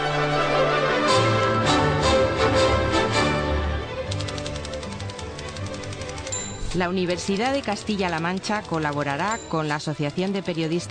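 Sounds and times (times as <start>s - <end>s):
music bed: 0.0s - 10.8s
typewriter keystrokes: 4.1s - 10.8s
speech: 6.8s - 10.8s.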